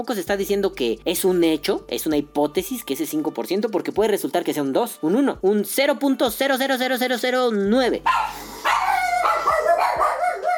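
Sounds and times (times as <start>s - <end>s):
speech: 0.0s - 8.5s
several dogs barking excitedly: 8.1s - 10.5s.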